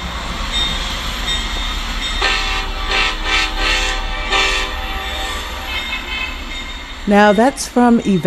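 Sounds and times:
train rumbling past a railroad crossing: 0.0 - 8.2
train horn blasts: 2.2 - 8.2
speech: 7.1 - 8.2.

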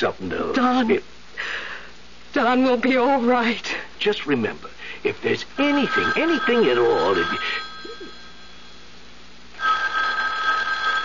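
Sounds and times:
speech: 0.0 - 1.7, 2.3 - 7.6
room hiss: 0.0 - 11.0
telephone bell ringing: 5.6 - 9.0, 9.6 - 11.0.

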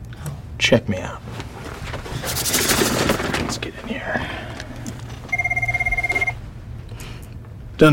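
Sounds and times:
low steady hum: 0.0 - 7.9
speech: 0.6 - 1.4, 2.3 - 4.6, 7.8 - 7.9
office telephone ringing with a trilling electronic bell: 5.3 - 6.4.

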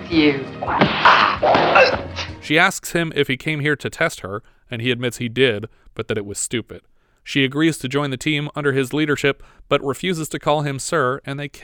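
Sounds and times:
speech: 0.1 - 11.6
punches landing on a person with dull fleshy thuds: 0.8 - 2.2.

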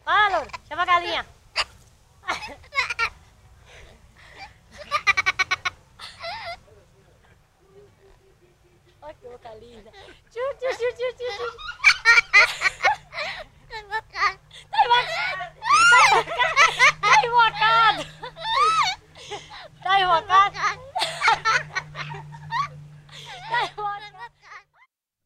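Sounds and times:
low steady hum: 0.0 - 24.9
speech: 1.0 - 1.4
girl laughing in Bahia, Brazil: 1.6 - 3.2, 4.3 - 6.6, 9.6 - 24.9
parrot laughing in Bahia, Brazil: 4.8 - 6.6, 10.8 - 24.9.

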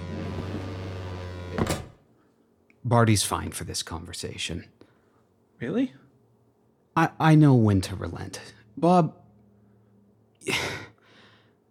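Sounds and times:
door opening or closing with a whooshing burst: 0.0 - 2.0
steady low mechanical hum: 0.0 - 11.6
speech: 2.8 - 4.8, 5.6 - 6.0, 7.0 - 9.2, 10.4 - 10.8.

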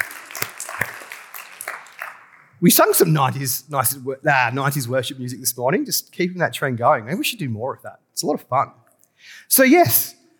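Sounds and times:
crowd applauding: 0.0 - 2.6
speech: 2.6 - 10.2.

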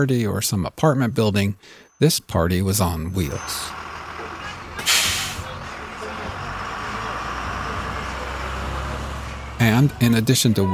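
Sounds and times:
speech: 0.0 - 3.8, 9.6 - 10.7
road rumble: 0.0 - 10.7
bus engine idling: 3.1 - 10.7
bus air brakes hissing: 4.8 - 5.6.

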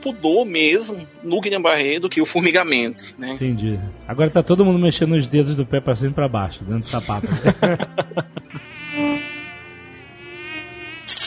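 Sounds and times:
speech: 0.0 - 8.4
laughter: 6.9 - 8.8
high whining mosquito buzzing: 8.5 - 11.2.

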